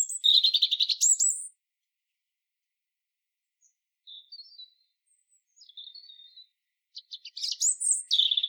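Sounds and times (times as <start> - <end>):
European robin Erithacus rubecula song of trills and twitters: 0.0 - 1.6, 3.6 - 8.4.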